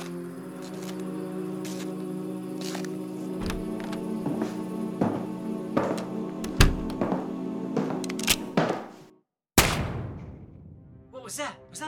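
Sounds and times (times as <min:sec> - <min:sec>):
tense droning music with sharp clicking hits: 0:00.0 - 0:09.0
single loud gunshot: 0:09.6 - 0:10.8.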